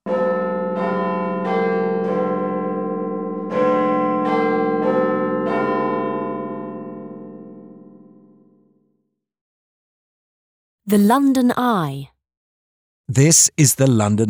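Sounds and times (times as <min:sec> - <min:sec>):
large clock tower bell tolling the hour: 0:00.1 - 0:07.8
speech: 0:10.9 - 0:12.1, 0:13.1 - 0:14.2.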